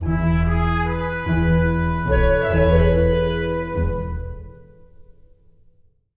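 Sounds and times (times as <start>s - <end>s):
game fanfare music: 0.1s - 4.6s.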